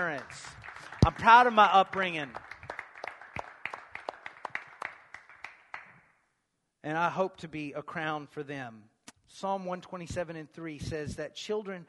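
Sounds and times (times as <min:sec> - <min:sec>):
speech: 0:00.0 - 0:02.5, 0:06.8 - 0:11.8
small audience clapping hands: 0:00.0 - 0:06.0.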